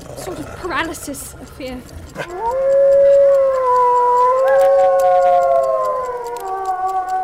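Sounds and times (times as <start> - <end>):
speech: 0.7 - 3.2
several wolves howling together: 2.1 - 7.2.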